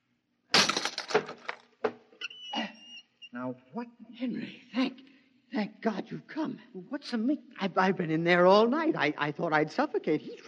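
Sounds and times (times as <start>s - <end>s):
lock being smashed: 0.5s - 1.7s
speech: 3.4s - 4.7s, 5.6s - 10.4s.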